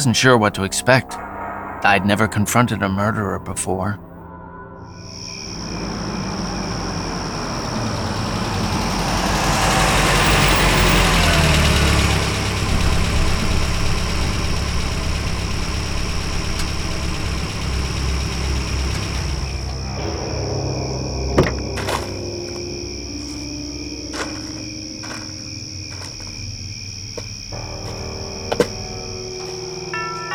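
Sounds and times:
speech: 0.0 - 1.2, 1.8 - 4.1
car engine running while driven at night to Boston: 5.0 - 30.3.

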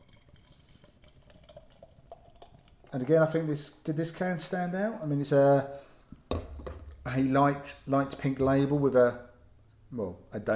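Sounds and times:
dark hazy beer pouring into a glass: 0.0 - 3.9
speech: 2.9 - 5.9, 7.1 - 9.3, 9.9 - 10.5.

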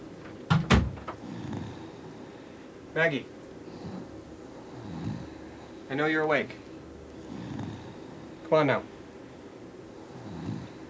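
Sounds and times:
quiet hum: 0.0 - 10.8
firm knocking on a door: 0.5 - 1.2
speech: 3.0 - 3.4, 5.9 - 6.6, 8.5 - 8.9.

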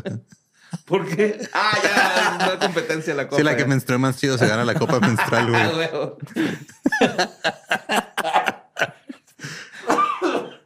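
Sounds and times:
laughter: 0.0 - 3.4, 4.3 - 10.6
speech: 0.0 - 8.4
harsh throaty coughing: 9.8 - 10.6.

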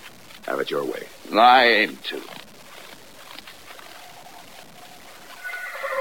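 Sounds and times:
steady outdoor hiss: 0.0 - 5.9
speech: 0.4 - 2.4
horse whinnying: 5.2 - 5.9.

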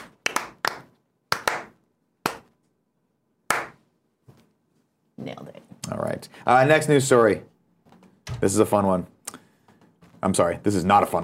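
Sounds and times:
slow hand claps: 0.0 - 2.6, 3.5 - 3.8
speech: 5.2 - 7.5, 8.4 - 9.2, 10.2 - 11.2.

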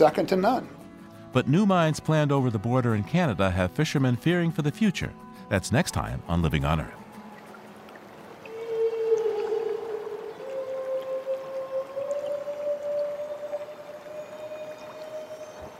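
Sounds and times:
speech: 0.0 - 7.0
humpback whale moan recorded underwater in Southeast Alaska: 8.4 - 15.7.

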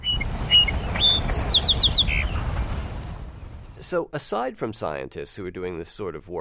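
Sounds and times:
song sparrow singing: 0.0 - 2.4
heavy low rumble and hiss of an old recording: 0.0 - 5.6
speech: 3.9 - 6.3.

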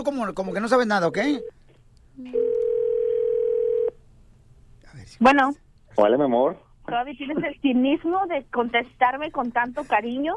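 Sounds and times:
speech: 0.0 - 1.6, 2.2 - 2.5, 5.0 - 10.3
noise: 0.0 - 10.3
outgoing phone call ringing tone: 2.3 - 4.0.

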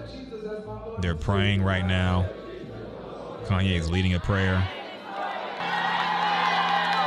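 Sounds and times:
speech: 0.1 - 2.4, 3.4 - 4.8
large crowd cheering: 2.4 - 7.0
large crowd clapping: 4.6 - 7.0.

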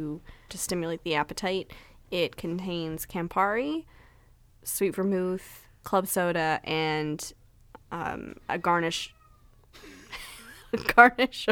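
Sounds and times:
speech: 0.0 - 4.0, 4.6 - 9.2, 9.8 - 11.4
cat meowing: 8.6 - 9.6.

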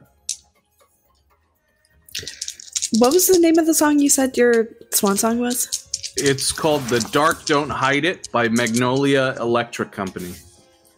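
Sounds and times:
dice rolling and clattering: 2.1 - 3.8, 4.5 - 9.3
speech: 2.2 - 10.5.

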